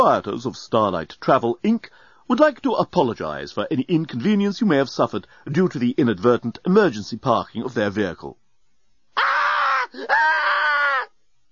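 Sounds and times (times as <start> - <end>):
speech: 0.0 - 8.4, 9.9 - 10.4
person screaming uncontrollably: 9.2 - 11.2.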